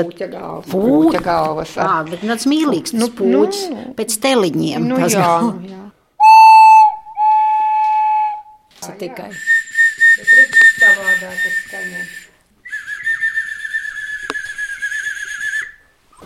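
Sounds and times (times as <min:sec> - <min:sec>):
speech: 0:00.0 - 0:05.9, 0:08.8 - 0:09.6, 0:11.0 - 0:12.2
traditional Latvian ceramic clay whistle being blown: 0:06.2 - 0:08.7, 0:09.3 - 0:16.0.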